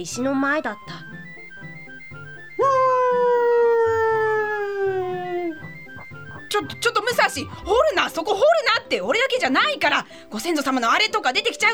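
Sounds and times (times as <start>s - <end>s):
speech: 0.0s - 1.2s, 6.5s - 11.7s
faint low noise: 0.0s - 11.7s
dog howling: 2.6s - 6.0s.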